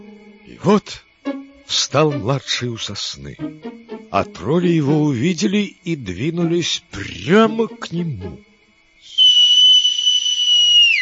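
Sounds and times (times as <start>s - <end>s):
speech: 0.5s - 1.1s, 1.7s - 8.5s
loud whistle blown as a signal: 9.0s - 11.0s.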